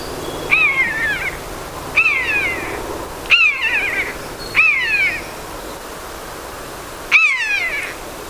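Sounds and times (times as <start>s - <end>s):
common buzzard giving loud drawn-out mewing cries: 0.0s - 5.7s, 7.1s - 8.0s.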